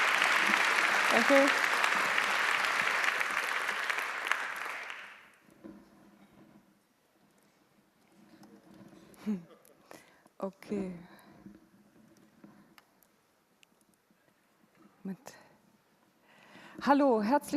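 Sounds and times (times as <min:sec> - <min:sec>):
crowd applause: 0:00.0 - 0:05.4
speech: 0:01.1 - 0:01.7, 0:09.3 - 0:09.5, 0:10.4 - 0:11.1, 0:16.9 - 0:17.5.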